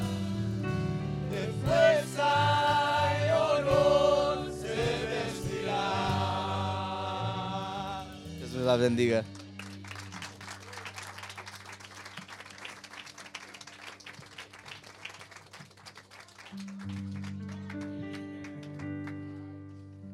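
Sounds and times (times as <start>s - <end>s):
sustained keyboard chords: 0.0s - 12.5s, 16.5s - 20.1s
speech: 8.7s - 9.4s
audience applauding for the Lord in the morning: 9.2s - 19.5s.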